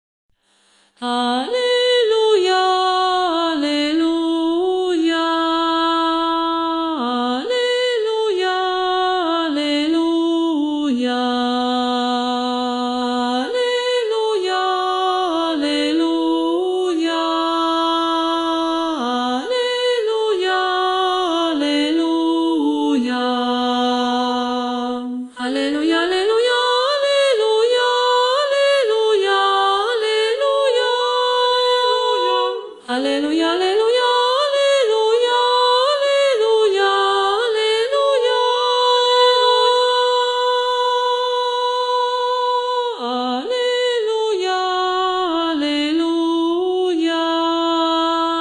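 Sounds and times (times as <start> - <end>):
female sopranos singing alleluia: 1.0 - 48.3.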